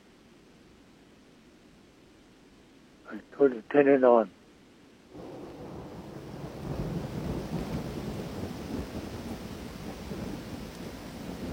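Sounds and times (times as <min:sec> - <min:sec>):
steady rain: 0:00.0 - 0:11.5
speech: 0:03.1 - 0:04.4
deep continuous rumble of thunder: 0:05.1 - 0:11.5.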